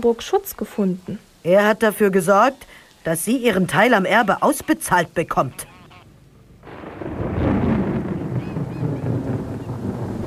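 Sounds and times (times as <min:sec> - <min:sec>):
speech: 0:00.0 - 0:05.7
gusting wind roaring: 0:06.1 - 0:10.2
deep rolling thunder: 0:06.6 - 0:10.2.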